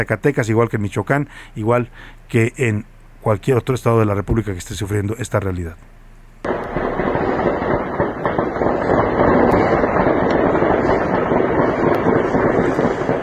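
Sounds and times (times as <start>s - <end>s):
speech: 0.0s - 5.9s
heavy gunfire in city streets at night: 6.5s - 13.2s.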